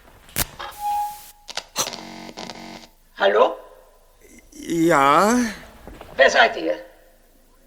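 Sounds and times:
sharp electrical clicks of a fluorescent tube light: 0.0 - 2.9
fluorescent tube light buzzing hum: 0.0 - 7.6
brief hiss: 0.4 - 1.5
speech: 3.2 - 3.6, 4.7 - 5.6, 6.2 - 6.9.

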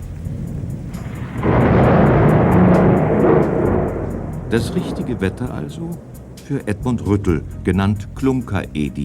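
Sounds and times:
pouring rain over a town: 0.0 - 9.0
rolling thunder of a night thunderstorm over a town: 0.0 - 9.0
speech: 4.5 - 9.0.

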